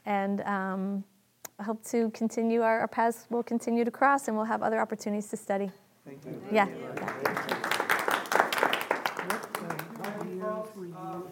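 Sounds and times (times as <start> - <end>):
speech: 0.1 - 7.6
audience applause: 6.4 - 10.9.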